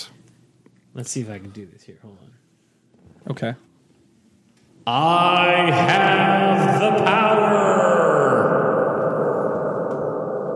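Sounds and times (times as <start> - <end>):
speech: 1.0 - 2.5, 3.2 - 3.7, 4.8 - 8.1
shouted voice with live reverb effect from a sound board: 4.9 - 10.5.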